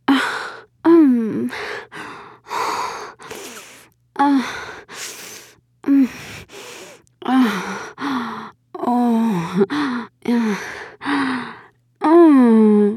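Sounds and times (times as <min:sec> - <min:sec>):
woman moaning: 0:00.1 - 0:01.6, 0:04.2 - 0:04.8, 0:07.2 - 0:12.9.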